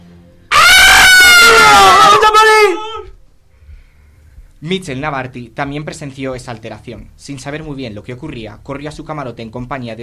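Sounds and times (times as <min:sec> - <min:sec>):
passengers screaming: 0:00.5 - 0:03.1
speech: 0:04.6 - 0:10.0.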